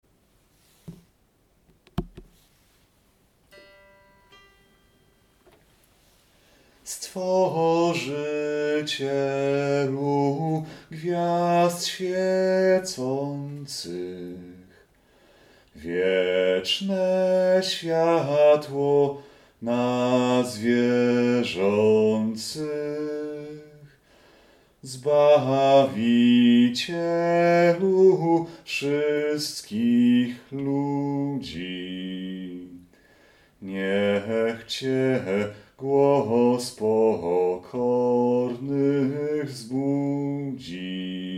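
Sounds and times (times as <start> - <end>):
bass voice singing an Advent hymn: 6.8 - 14.8, 15.8 - 24.0, 24.8 - 32.9, 33.6 - 41.3.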